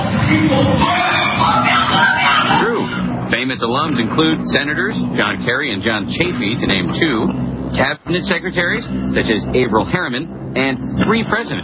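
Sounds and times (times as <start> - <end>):
crowd screaming and yelling at an initiation ritual: 0.0 - 3.3
wailing cries: 0.8 - 3.1
speech: 3.5 - 11.6.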